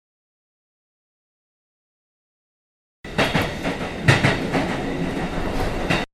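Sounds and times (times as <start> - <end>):
passenger train rumbling on rails: 3.1 - 6.1
train wheels clacking over track joints: 3.1 - 6.1.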